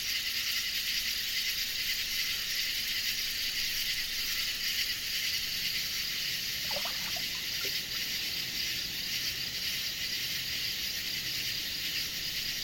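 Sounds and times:
dense chorus of cicadas shrilling: 0.0 - 12.6
gentle distant waves lapping against the shore: 6.7 - 8.0.

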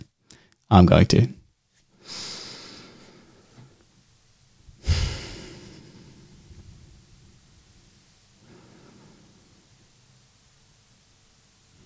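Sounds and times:
speech: 0.7 - 1.4
group taking deep breaths during a mental health workshop: 2.0 - 3.8, 4.8 - 6.7, 8.4 - 9.8.

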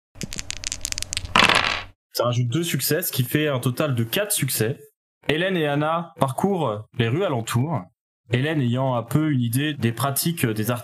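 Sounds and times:
three plastic dice clattering as they are rerolled: 0.2 - 1.9
speech: 2.2 - 10.8.

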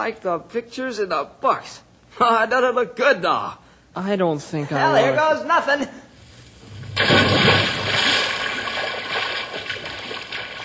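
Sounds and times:
speech: 0.0 - 6.0
person jumping into an old swimming hole: 6.7 - 10.6.

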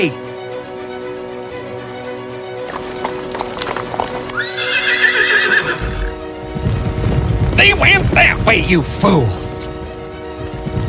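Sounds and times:
speech: 0.0 - 0.2, 7.6 - 9.7
hooves clattering: 2.6 - 10.8
horses galloping with riders outside the city of Paris: 2.6 - 10.8
loud shrill horse whinny: 4.3 - 6.2.

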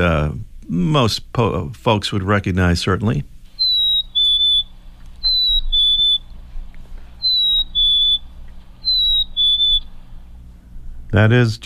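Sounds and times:
speech: 0.0 - 3.3, 11.1 - 11.6
low rumble: 0.0 - 11.6
chickadee spring call whistle: 3.5 - 11.1.

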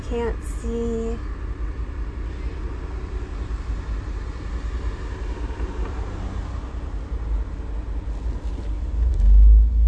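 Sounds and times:
low engine rumble of a car on the street: 0.0 - 9.8
traffic noise: 0.0 - 9.8
speech: 0.1 - 1.4
vehicle passing: 2.2 - 9.0.

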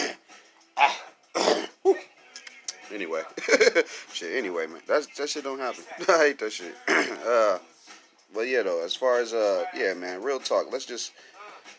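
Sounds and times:
man coughing and clearing phlegm from his throat: 0.0 - 0.2, 0.8 - 2.0, 6.8 - 7.3
speech: 2.9 - 7.7, 8.3 - 11.3.

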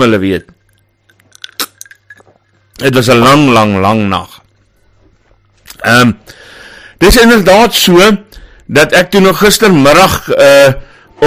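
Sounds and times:
speech: 0.0 - 0.6, 2.8 - 4.4, 5.8 - 6.4, 7.0 - 11.2
low steady hum: 0.0 - 11.2
soft wet mouth smacks of sipping whisky: 1.1 - 2.3.

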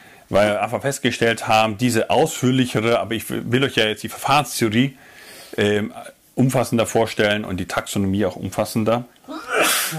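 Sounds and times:
speech: 0.3 - 9.9
person sneezing: 9.3 - 9.9.

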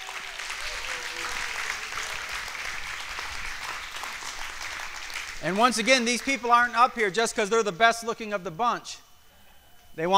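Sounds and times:
audience applause: 0.0 - 6.4
speech: 5.4 - 9.0, 10.0 - 10.1.

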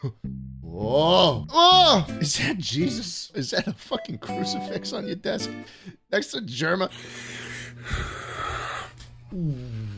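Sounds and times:
speech: 0.0 - 8.3, 9.3 - 9.9
heavy wheezy breathing: 6.9 - 9.9.

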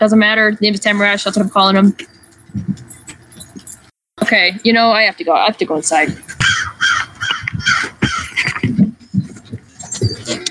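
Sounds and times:
speech: 0.0 - 2.9, 4.2 - 6.8
crow squawking in harsh raspy caws: 6.4 - 8.4.

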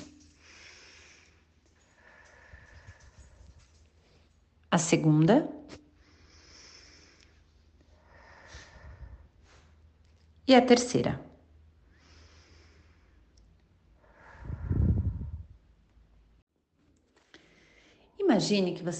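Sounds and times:
slow deep breath in and out: 0.1 - 4.4, 5.9 - 9.9, 11.8 - 15.7
speech: 4.7 - 5.8, 10.5 - 11.3, 18.4 - 18.9.

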